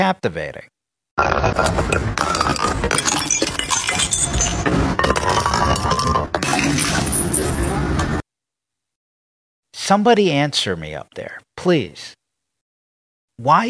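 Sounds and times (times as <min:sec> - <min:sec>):
speech: 0:00.0 - 0:03.5, 0:09.9 - 0:12.2, 0:13.4 - 0:13.6
glass bottles clattering and rolling down steps: 0:01.5 - 0:07.8
glass bottles shattering: 0:01.9 - 0:07.8.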